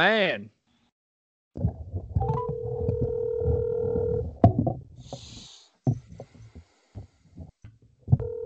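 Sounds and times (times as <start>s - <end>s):
speech: 0.0s - 0.6s
telephone dial tone: 2.2s - 4.3s, 8.2s - 8.4s
telephone ringing: 2.2s - 4.3s, 8.2s - 8.4s.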